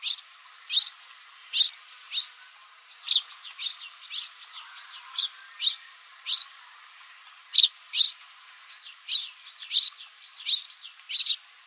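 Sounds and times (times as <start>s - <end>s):
house sparrow chirping: 0.0s - 2.4s, 3.0s - 6.5s, 7.5s - 8.2s, 9.1s - 11.4s.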